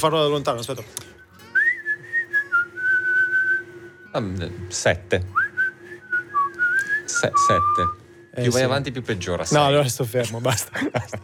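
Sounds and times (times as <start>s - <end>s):
speech: 0.0s - 1.2s, 4.2s - 5.4s, 7.2s - 11.2s
shrill high-pitched whistle: 1.2s - 4.1s, 5.3s - 8.4s
laughter: 10.2s - 11.2s.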